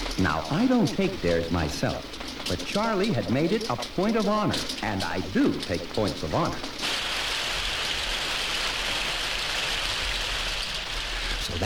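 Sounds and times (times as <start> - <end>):
speech: 0.2 - 6.8
heavy rain drumming on a surface: 6.8 - 11.6.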